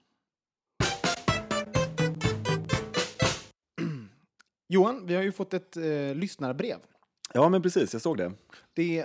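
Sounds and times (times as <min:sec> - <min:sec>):
short upbeat podcast jingle: 0:00.8 - 0:03.5
speech: 0:04.7 - 0:09.0.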